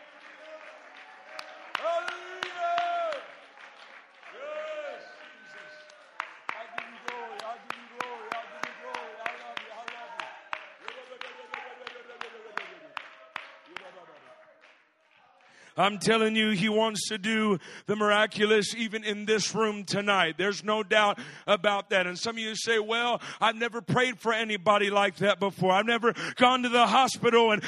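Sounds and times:
congregation clapping hands in rhythm: 0:00.0 - 0:16.3
speech: 0:15.8 - 0:27.6.

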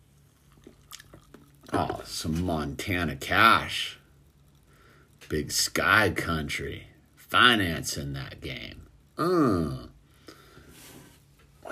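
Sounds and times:
low steady hum: 0:00.0 - 0:11.7
sip of fizzy tonic water: 0:00.2 - 0:02.1
speech: 0:01.7 - 0:04.0, 0:05.3 - 0:09.9.

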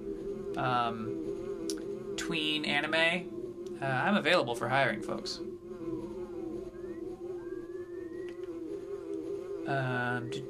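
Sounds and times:
Super Nintendo-style video game insect buzz: 0:00.0 - 0:10.4
bright electronic tone: 0:00.0 - 0:10.4
speech: 0:00.6 - 0:05.5, 0:09.7 - 0:10.4.

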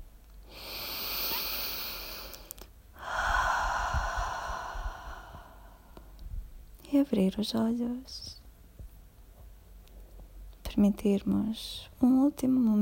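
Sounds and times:
slow deep inhale and sighing exhale: 0:00.4 - 0:06.2
speech: 0:07.0 - 0:08.4, 0:10.8 - 0:12.8.

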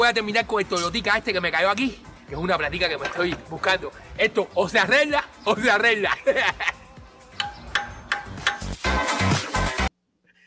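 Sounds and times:
speech: 0:00.1 - 0:06.8
laughter: 0:05.9 - 0:07.0
hammer striking a metal part of a Toyota car engine under repair: 0:07.4 - 0:08.8.

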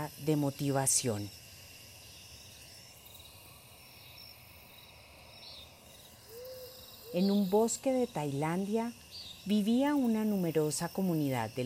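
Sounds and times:
speech: 0:00.0 - 0:01.4, 0:07.1 - 0:11.6
insects chirping at night: 0:00.0 - 0:11.6
owl hooting softly at night: 0:06.1 - 0:07.7.

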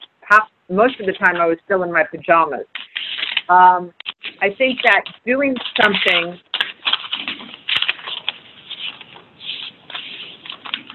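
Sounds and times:
speech: 0:00.3 - 0:02.8, 0:03.5 - 0:06.5
papers rustling over a phone line: 0:02.7 - 0:10.9.

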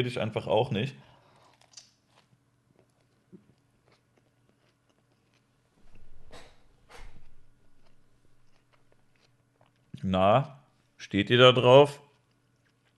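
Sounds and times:
speech: 0:00.0 - 0:01.1, 0:10.0 - 0:12.0
chewing and biting into a bread roll: 0:01.2 - 0:06.2, 0:07.1 - 0:10.0, 0:12.0 - 0:12.9.

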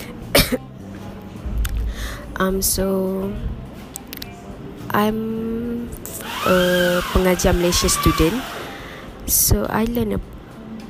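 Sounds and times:
sharp cough: 0:00.3 - 0:00.7
speech: 0:02.4 - 0:03.6, 0:04.9 - 0:08.6, 0:09.3 - 0:10.3.

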